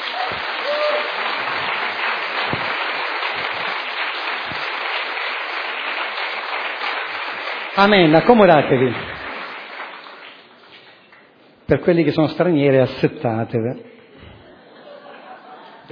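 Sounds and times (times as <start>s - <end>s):
faint voices and cheers: 0.0s - 1.6s
audience applauding loudly: 0.0s - 11.2s
speech: 7.8s - 9.1s, 11.7s - 13.9s
laughter: 13.9s - 15.8s.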